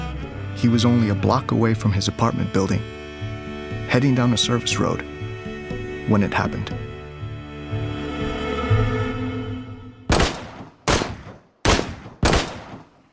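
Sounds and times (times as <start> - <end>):
sustained musical passage: 0.0 - 10.6
speech: 0.6 - 3.0, 3.9 - 5.1, 6.1 - 6.9
gunshots: 10.1 - 13.1.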